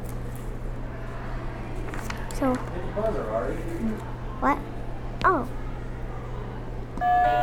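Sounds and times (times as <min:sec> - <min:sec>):
low hum: 0:00.0 - 0:07.4
speech: 0:02.4 - 0:05.6, 0:07.0 - 0:07.4
game buzzer button sounding a bright sustained electronic tone: 0:07.0 - 0:07.4.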